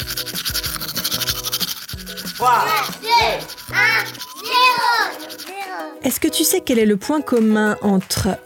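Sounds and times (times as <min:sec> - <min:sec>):
brief vocal swoops: 0:00.0 - 0:05.2
toothbrush with toothpaste scrubbing teeth: 0:00.0 - 0:05.7
tonal music-like sounds: 0:00.0 - 0:08.4
speech: 0:02.4 - 0:08.4.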